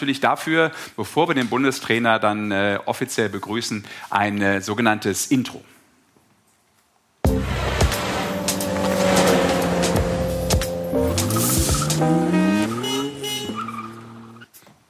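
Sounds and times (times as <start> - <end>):
speech: 0.0 - 5.8
car engine revving through gear shifts: 7.3 - 14.5
car tires squealing: 7.3 - 14.5.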